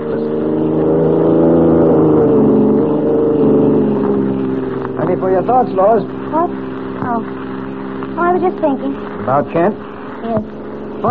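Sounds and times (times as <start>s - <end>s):
car engine droning while driving along a road: 0.0s - 11.1s
speech: 5.2s - 6.6s, 8.2s - 11.1s.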